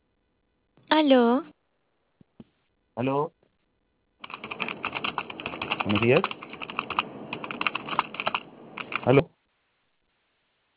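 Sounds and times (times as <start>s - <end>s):
speech: 0.9s - 1.5s, 3.0s - 3.4s, 5.8s - 6.4s, 9.0s - 9.3s
computer keyboard typing: 4.2s - 9.2s.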